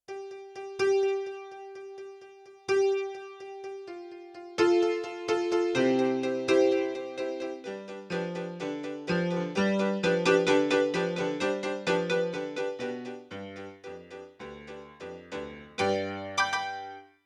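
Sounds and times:
Yamaha CFIII grand piano: 0.1s - 17.2s.

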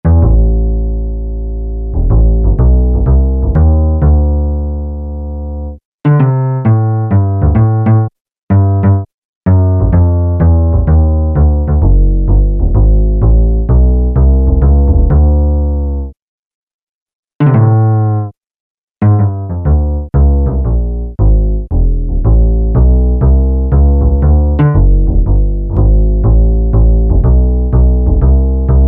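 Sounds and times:
acoustic bass from a Peavey DPM Spectrum Bass: 0.0s - 16.2s, 17.4s - 18.3s, 19.0s - 28.8s.

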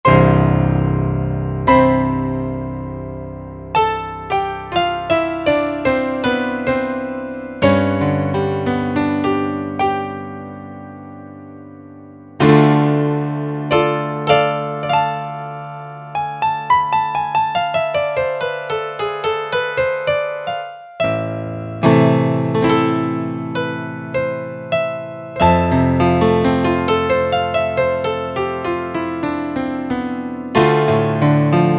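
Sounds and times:
Grand Piano 16' patch on a Korg Wavestation A-D synthesizer: 0.0s - 31.7s.

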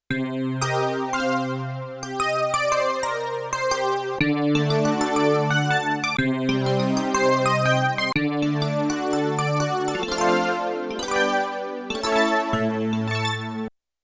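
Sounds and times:
spacey keys on a Yamaha TX16W sampler: 0.6s - 13.6s.

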